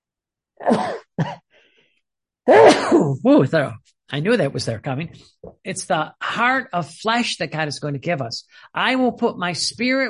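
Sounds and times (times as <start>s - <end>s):
person sneezing: 0.6s - 1.4s, 2.5s - 3.2s
speech: 0.6s - 1.4s, 2.5s - 10.0s.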